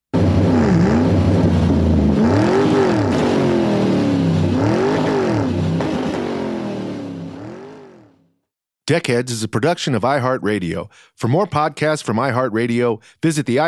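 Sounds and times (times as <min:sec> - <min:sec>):
boat engine revving and speeding away: 0:00.2 - 0:08.2
speech: 0:08.9 - 0:13.6.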